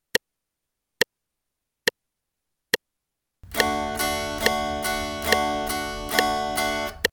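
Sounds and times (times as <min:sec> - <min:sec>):
guitar upstrokes and downstrokes in D: 0:03.4 - 0:07.1.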